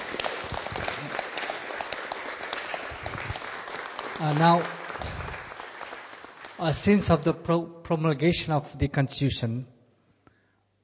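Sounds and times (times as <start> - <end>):
audience applauding: 0.0 - 7.2
speech: 4.2 - 4.8, 6.6 - 9.8.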